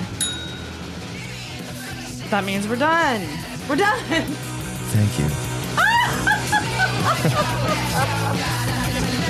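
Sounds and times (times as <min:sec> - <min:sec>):
hand bell being rung: 0:00.0 - 0:01.2
speech: 0:02.3 - 0:05.4
laughter: 0:03.7 - 0:04.4, 0:05.8 - 0:09.2.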